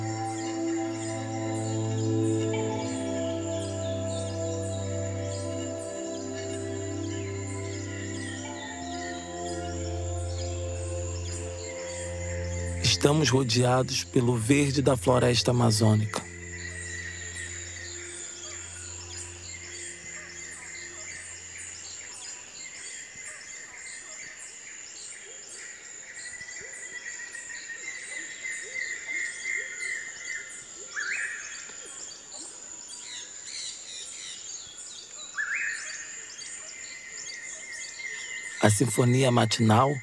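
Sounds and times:
steady insect buzz in the Amazon rainforest: 0.0 - 13.4, 15.5 - 23.4
low hum: 0.0 - 22.2
dense morning chorus of chirping birds in the Amazon rainforest: 0.0 - 40.0
speech: 13.0 - 16.2, 38.7 - 40.0.

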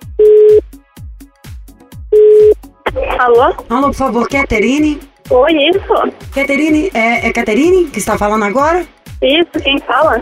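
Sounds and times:
rhythmic music: 0.0 - 10.2
telephone ringing tone from an outgoing call: 0.2 - 0.6, 2.1 - 2.6
speech: 3.2 - 10.2.

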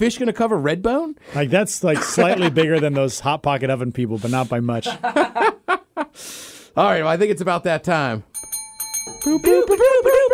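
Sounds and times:
speech: 0.0 - 5.6, 6.2 - 8.3, 9.2 - 10.3
laughter: 1.9 - 3.1, 4.8 - 6.1, 9.3 - 10.3
bell being tapped: 8.3 - 10.3.

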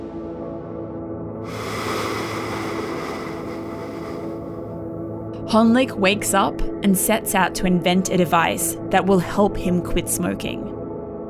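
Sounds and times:
ocean surf waves crashing: 1.5 - 4.7
speech: 5.5 - 10.7.

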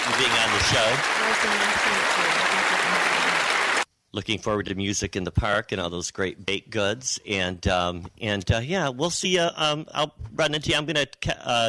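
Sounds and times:
crowd applauding: 0.0 - 3.9
speech: 0.1 - 3.4, 4.1 - 11.6.

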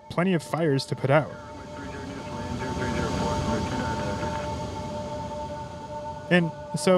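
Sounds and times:
DC-10 air tanker engine drone with sustained whine: 0.0 - 6.9
speech: 0.2 - 1.5, 6.3 - 6.9
DC-10 firefighting tanker aircraft taking off at an airport: 0.8 - 6.9.

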